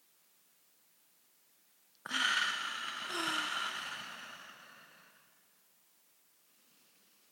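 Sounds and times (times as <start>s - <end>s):
group taking a deep breath during a guided breathing exercise: 2.1s - 5.4s.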